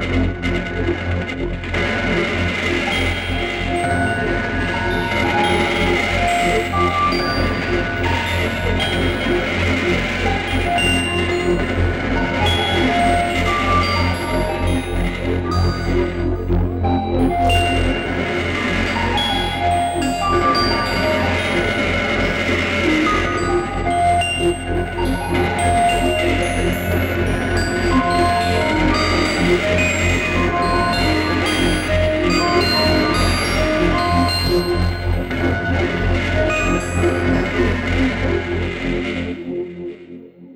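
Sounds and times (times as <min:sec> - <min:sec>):
audio feedback in Ableton: 0:00.1 - 0:39.9.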